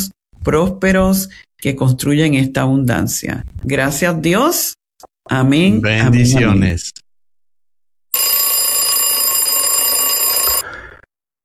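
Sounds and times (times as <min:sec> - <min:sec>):
speech: 0:00.4 - 0:07.0
alarm clock ringing with a buzzing metallic tone: 0:08.1 - 0:10.6.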